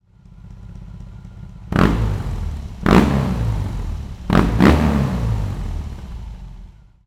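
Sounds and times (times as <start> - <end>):
BMW R18 motorcycle engine with short open exhaust: 0.0 - 7.0.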